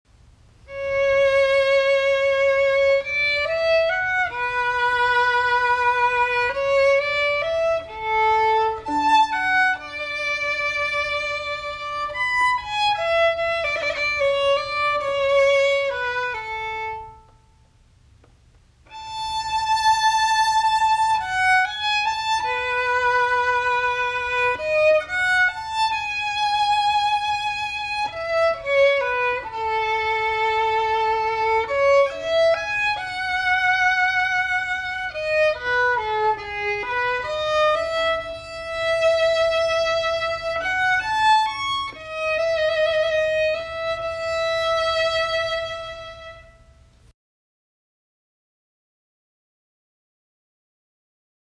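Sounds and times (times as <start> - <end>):
solo violin playing an arioso: 0.6 - 17.6, 18.9 - 46.7.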